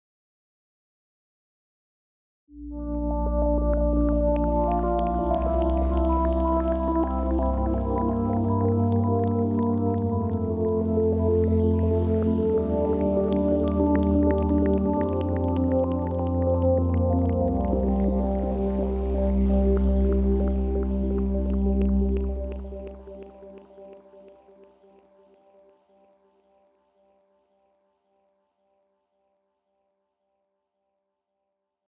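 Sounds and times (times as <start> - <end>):
ambient synth pad without reverb: 2.6 - 25.5.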